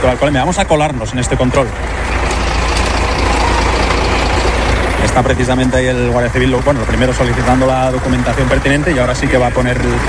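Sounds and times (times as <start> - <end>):
speech: 0.0 - 2.4, 5.2 - 10.0
truck engine idling at a roadside police alcohol checkpoint: 0.0 - 10.0.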